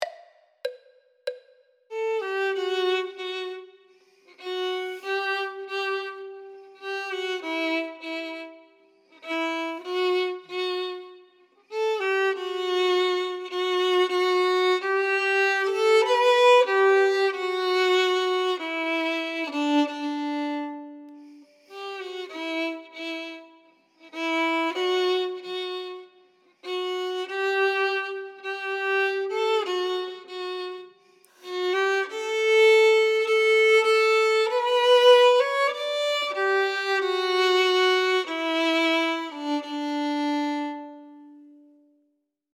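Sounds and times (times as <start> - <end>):
first violin: 1.9 - 42.1.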